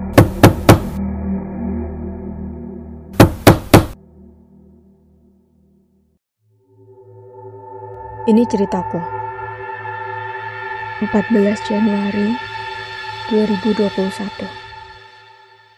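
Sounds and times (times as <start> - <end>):
low droning musical background: 0.0 - 15.7
sharp loud knocks on a door: 0.2 - 1.0, 3.2 - 4.0
speech: 8.2 - 9.2, 11.0 - 12.6, 13.3 - 14.6.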